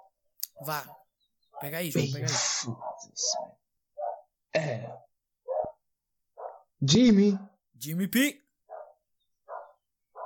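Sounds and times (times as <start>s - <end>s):
dog barking: 0.0s - 5.8s, 6.4s - 6.7s, 8.7s - 10.2s
speech: 0.6s - 1.0s, 1.6s - 3.6s, 4.5s - 5.1s, 6.8s - 8.4s.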